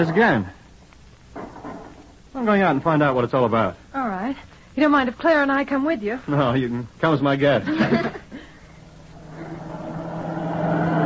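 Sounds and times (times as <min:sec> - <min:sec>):
speech: 0:00.0 - 0:00.6, 0:02.4 - 0:08.2
cars speeding past: 0:09.3 - 0:11.0.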